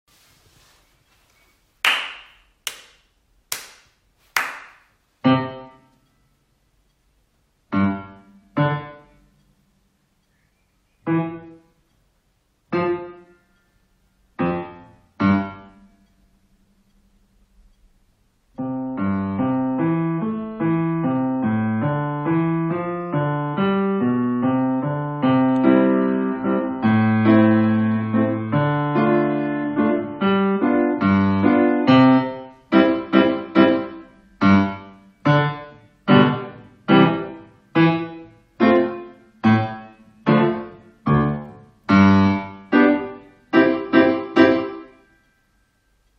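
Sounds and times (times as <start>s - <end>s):
Grade 1 piano duet practice with teacher parts: 5.2s - 6.0s, 7.7s - 9.2s, 11.0s - 11.7s, 12.7s - 13.5s, 14.3s - 16.0s, 18.6s - 45.0s.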